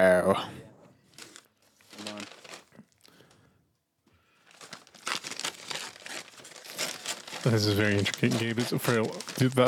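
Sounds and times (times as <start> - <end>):
speech: 0.0 - 0.7, 7.4 - 9.6
bag ripped apart and crinkled into a makeshift plague doctor mask: 1.2 - 2.8, 4.4 - 9.6.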